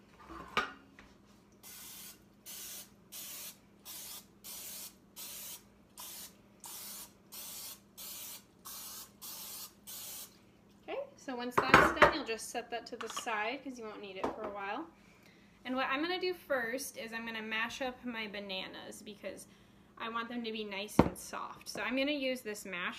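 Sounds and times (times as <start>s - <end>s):
cooking spray sprayed into muffin tin: 1.6s - 10.4s
speech: 11.3s - 15.0s, 15.7s - 22.9s.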